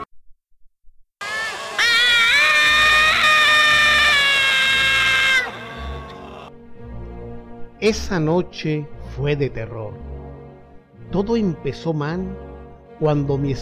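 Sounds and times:
person screaming in terror: 1.2 - 6.5
speech: 7.8 - 10.1, 11.1 - 13.6.

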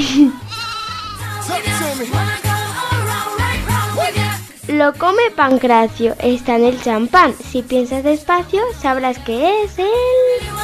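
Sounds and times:
bouncy musical backing with a steady repeating bass pulse: 0.0 - 10.6
quavering goat-like bleat: 0.4 - 1.3
speech: 2.0 - 2.4, 4.7 - 10.6.

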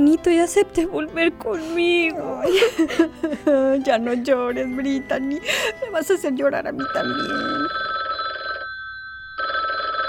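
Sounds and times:
speech: 0.0 - 7.8
laughter: 2.4 - 3.8
telephone bell ringing with a bright steady trill: 6.8 - 10.0.

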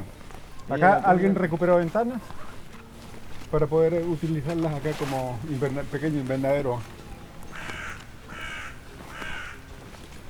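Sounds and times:
speech: 0.7 - 2.5, 3.5 - 7.0
European crow cawing: 7.5 - 9.7.

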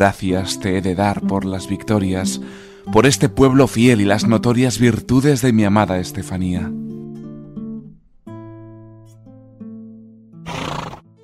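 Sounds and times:
speech: 0.0 - 6.8
horse neighing in a long shrill whinny: 10.5 - 11.1.

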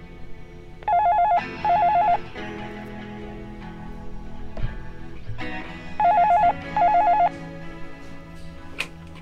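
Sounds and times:
telephone ringing with short warbling bursts: 0.8 - 2.2, 6.0 - 7.3.

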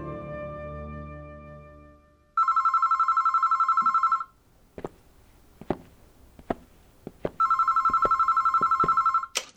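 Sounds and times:
telephone ringing in long rapid trilling bursts: 2.4 - 9.3.

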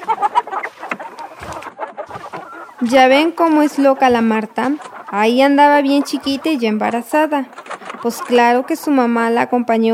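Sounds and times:
hens clucking in a chicken coop: 0.0 - 9.9
speech: 2.8 - 9.9.

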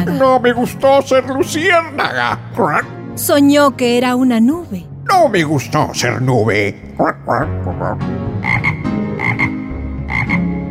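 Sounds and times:
speech: 0.0 - 8.2
toad croaking loudly: 6.8 - 10.6.

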